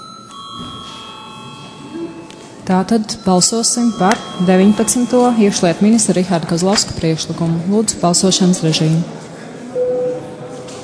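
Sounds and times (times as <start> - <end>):
electric bell ringing to call a vote in a parliamentary chamber: 0.0 - 6.5
low murmur: 0.0 - 10.8
speech: 2.7 - 9.2.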